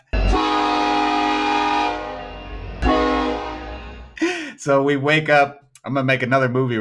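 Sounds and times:
loud train horn blowing: 0:00.0 - 0:04.2
speech: 0:04.6 - 0:06.7.

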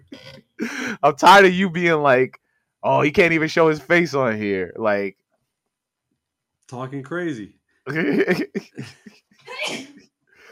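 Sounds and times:
person making short voiced sounds and gasps: 0:00.6 - 0:01.1
person sneezing: 0:00.6 - 0:01.2, 0:07.9 - 0:09.9
laughter: 0:00.6 - 0:02.3, 0:02.9 - 0:05.1, 0:06.8 - 0:09.1
speech: 0:00.9 - 0:05.2, 0:06.7 - 0:09.9.

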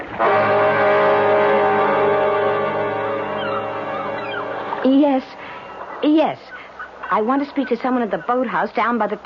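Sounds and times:
small outboard motor of a drifting boat droning: 0:00.1 - 0:06.0
speech: 0:07.1 - 0:09.2.

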